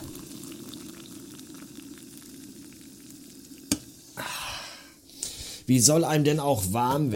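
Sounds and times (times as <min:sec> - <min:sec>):
water boiling for chicken broth: 0:00.0 - 0:05.1
speech: 0:05.7 - 0:07.1.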